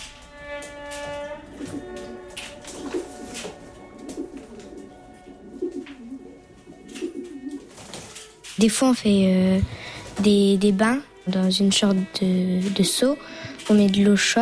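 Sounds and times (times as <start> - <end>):
racing pigeons cooing: 2.7 - 8.5
speech: 8.6 - 14.4.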